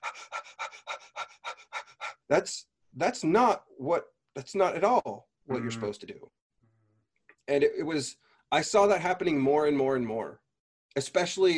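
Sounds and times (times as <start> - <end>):
louder sharp exhalation: 0.0 - 2.3
rapid forced breathing demonstration: 0.0 - 2.3
speech: 2.3 - 6.4, 7.5 - 11.5.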